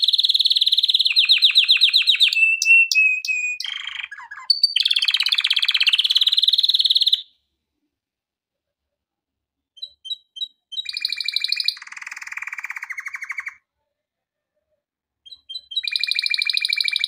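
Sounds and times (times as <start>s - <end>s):
canary singing with rapid trills and chirps: 0.0s - 7.3s, 9.8s - 13.6s, 15.2s - 17.0s.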